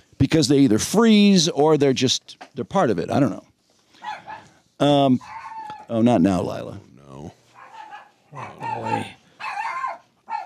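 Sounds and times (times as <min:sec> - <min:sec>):
speech: 0:00.2 - 0:03.5, 0:04.8 - 0:07.4
dog barking in whiny bursts: 0:04.0 - 0:04.6, 0:05.2 - 0:05.9, 0:07.5 - 0:10.4.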